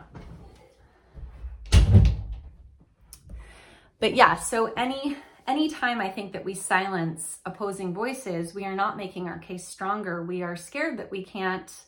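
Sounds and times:
door swinging shut with a thud: 1.6 - 2.5
speech: 4.0 - 11.8.

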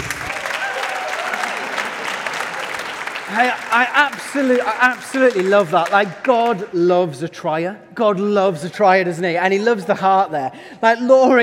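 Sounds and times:
audience applause: 0.0 - 6.6
speech: 3.4 - 11.4.

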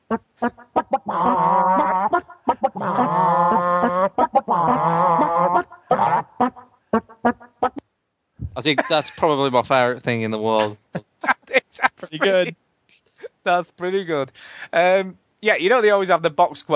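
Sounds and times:
chicken clucks and squawks performing a theme tune: 0.0 - 7.8
speech: 0.1 - 0.6, 8.6 - 11.0, 12.1 - 12.6, 13.5 - 16.7
laughter: 8.6 - 9.4, 10.5 - 12.5.

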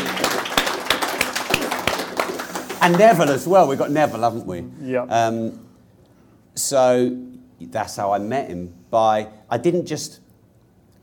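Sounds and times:
people at a networking event applauding: 0.0 - 3.8
speech: 2.8 - 5.6, 6.6 - 10.2.

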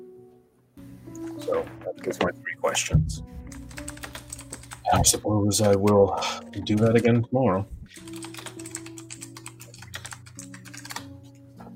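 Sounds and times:
speech: 1.5 - 3.5, 4.9 - 8.1
rapid computer keyboard typing: 3.5 - 7.0, 7.9 - 11.1.

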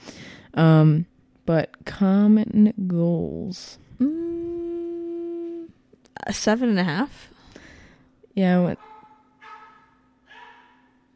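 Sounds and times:
speech: 0.6 - 4.5, 6.2 - 7.3, 8.4 - 8.9
steady low hum: 1.8 - 8.1
dog barking roughly: 8.8 - 11.0.

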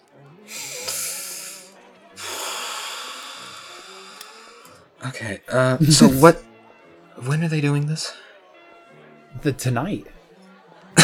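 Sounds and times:
heavy ragged breathing from a distressed person: 0.5 - 4.9
speech: 5.0 - 6.5, 7.2 - 8.3, 9.4 - 10.2.

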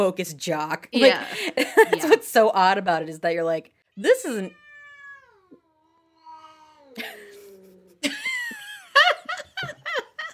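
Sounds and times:
speech: 0.0 - 4.6, 7.0 - 7.2
cat meowing: 4.0 - 7.6.

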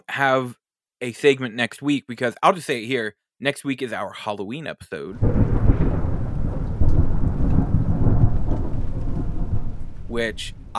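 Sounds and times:
speech: 0.2 - 5.9, 10.1 - 10.7
deep rumble of thunder with heavier crash: 5.2 - 10.7
steady hiss of rain: 5.2 - 10.7.

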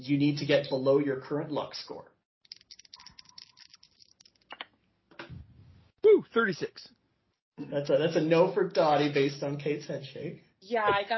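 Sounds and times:
speech: 0.0 - 2.1, 6.3 - 7.0, 7.6 - 11.1
percentile dice rattling across a hard surface: 2.4 - 4.6.

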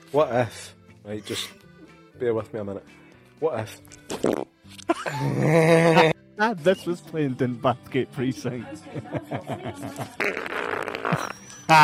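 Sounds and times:
speech: 0.1 - 1.6, 2.2 - 11.8
fart from a person: 4.1 - 5.6, 10.1 - 11.8
laughter: 4.9 - 6.2, 8.9 - 10.2.

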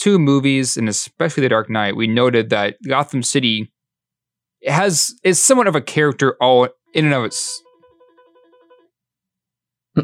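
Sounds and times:
speech: 0.0 - 3.8, 4.6 - 7.6
desk phone giving an electronic warbling ring: 6.7 - 9.0.

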